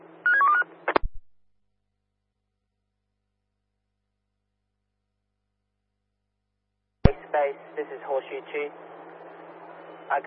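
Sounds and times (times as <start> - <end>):
telephone keypad tones as a number is dialed: 0.3 - 0.6
speech: 7.3 - 8.9, 10.1 - 10.2.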